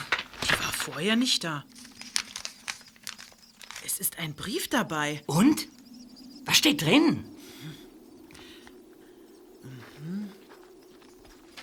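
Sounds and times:
paper roll crinkling as it is unrolled: 0.0 - 4.2
speech: 0.8 - 1.8, 4.0 - 5.8, 6.5 - 7.8.

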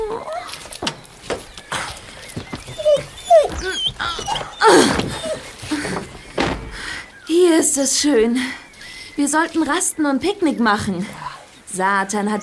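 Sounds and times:
rustling: 0.4 - 7.2
small dog whimpering and yipping: 2.3 - 6.4
speech: 4.6 - 5.0, 7.7 - 8.6, 9.2 - 12.4.

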